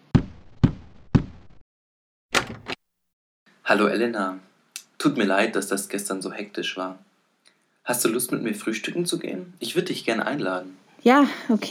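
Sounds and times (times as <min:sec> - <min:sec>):
firm knocks on a door: 0:00.1 - 0:01.5
speech: 0:03.7 - 0:07.1, 0:07.9 - 0:11.6.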